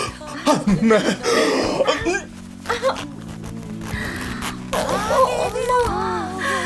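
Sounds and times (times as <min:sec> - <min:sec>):
laughter: 0:00.0 - 0:03.2
person making throaty vocal sounds and murmuring: 0:00.0 - 0:06.6
speech: 0:00.5 - 0:02.2
zipper on the back of a one-piece dress pulled down: 0:01.4 - 0:06.2.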